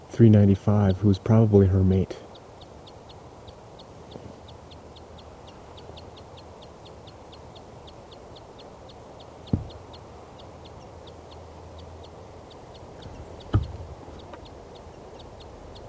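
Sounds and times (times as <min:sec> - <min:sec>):
speech: 0:00.2 - 0:02.2
female bird on her nest in a tree calling to her mate: 0:00.6 - 0:15.8
brief low thumps: 0:09.4 - 0:10.0, 0:13.0 - 0:14.5.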